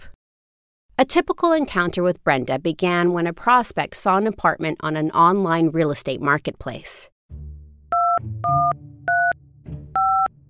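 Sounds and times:
speech: 1.0 - 7.4
phone touch-tone dialing beeps: 8.0 - 9.4, 10.0 - 10.3.

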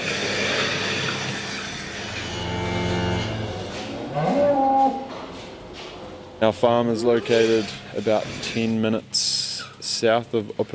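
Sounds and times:
steady noise: 0.0 - 10.7
cows lowing in the pit of a dairy milking shed: 1.9 - 5.2
speech: 6.4 - 9.3, 10.0 - 10.7.

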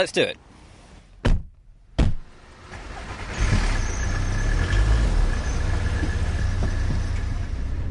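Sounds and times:
road and cabin noise: 0.0 - 7.8
car engine starting and rumbling: 0.5 - 7.8
car doors thudding shut: 1.2 - 7.4.

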